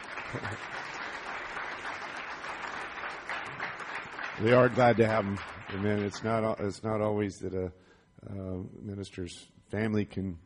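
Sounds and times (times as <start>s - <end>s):
audience applause, hand clapping: 0.0s - 6.2s
speech: 0.3s - 1.0s, 4.4s - 10.4s.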